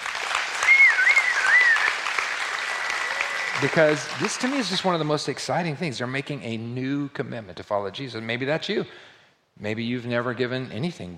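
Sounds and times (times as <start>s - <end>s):
room full of people clapping: 0.0s - 5.6s
high whistles or cheers: 0.6s - 4.0s
speech: 3.6s - 11.1s.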